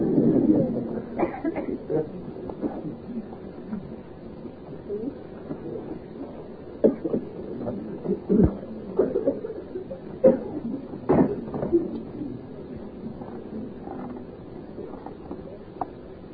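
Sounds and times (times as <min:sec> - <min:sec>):
low rumble: 0:00.0 - 0:16.3
coughing: 0:01.0 - 0:02.8, 0:06.8 - 0:07.4, 0:08.0 - 0:12.0.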